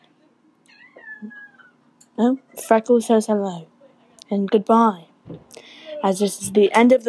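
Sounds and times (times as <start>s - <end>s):
faint noise: 0.0s - 7.0s
cat meowing: 0.7s - 1.7s
speech: 1.2s - 1.4s, 2.2s - 3.7s, 4.3s - 7.0s.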